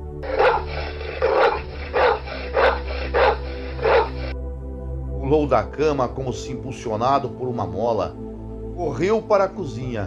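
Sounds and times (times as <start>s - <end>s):
dog barking vigorously: 0.2s - 4.3s
speech: 5.3s - 10.0s.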